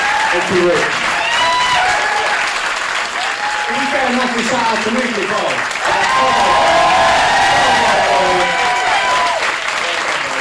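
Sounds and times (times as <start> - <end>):
scattered cheers: 0.0 - 4.4, 5.7 - 10.4
crowd applauding: 0.0 - 10.4
speech: 0.4 - 1.0, 3.7 - 7.1.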